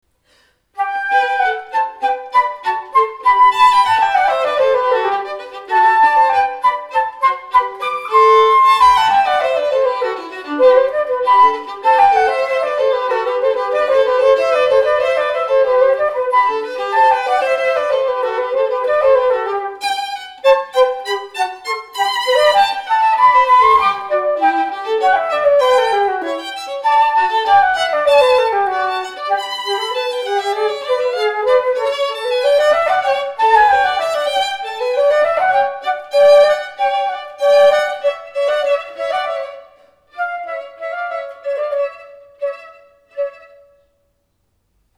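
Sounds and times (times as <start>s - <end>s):
flute duet: 0.8s - 43.9s.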